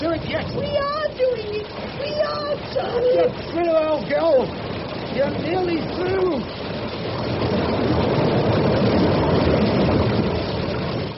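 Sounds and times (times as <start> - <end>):
small boat engine droning on water: 0.0 - 11.1
speech: 2.8 - 4.6, 5.2 - 6.6.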